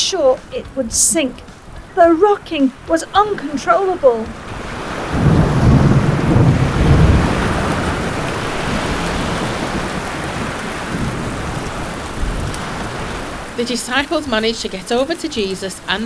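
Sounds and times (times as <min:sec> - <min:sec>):
deep loud thunder rumbling in a thunderstorm: 0:00.0 - 0:16.0
dense steady heavy rainfall: 0:00.0 - 0:16.0
faint gusty wind: 0:00.0 - 0:16.0
speech: 0:00.1 - 0:04.6, 0:13.6 - 0:16.0.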